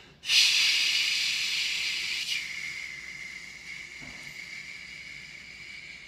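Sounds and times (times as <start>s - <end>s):
person exhaling loudly through the mouth during a breathing exercise: 0.0s - 6.0s.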